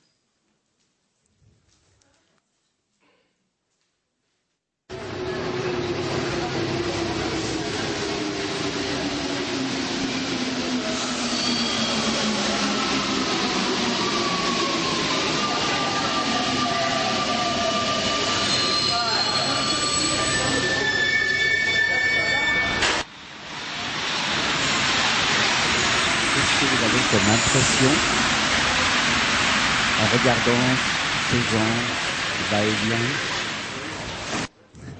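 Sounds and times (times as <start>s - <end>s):
metro train rumbling along the track: 4.9s - 34.9s
metro train wheels squealing: 10.8s - 23.0s, 25.7s - 28.1s
speech: 30.4s - 33.3s.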